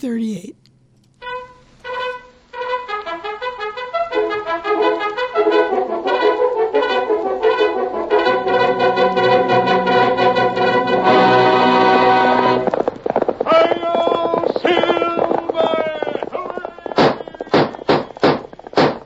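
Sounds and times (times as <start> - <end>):
speech: 0.0 - 0.6
galloping horse hoofbeats: 3.9 - 19.0
loud dramatic orchestral music: 4.1 - 12.7.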